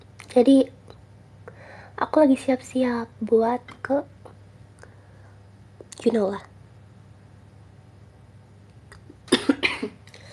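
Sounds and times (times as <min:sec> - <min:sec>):
speech: 0:00.4 - 0:00.8, 0:02.0 - 0:04.1, 0:06.0 - 0:06.5
person coughing dry husky coughs: 0:09.3 - 0:10.0.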